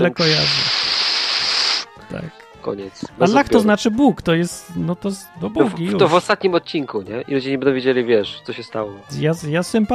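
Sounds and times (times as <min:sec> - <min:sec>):
speech: 0:00.0 - 0:00.8, 0:02.0 - 0:09.9
voice imitating radio static with a breathy hiss: 0:00.1 - 0:01.9.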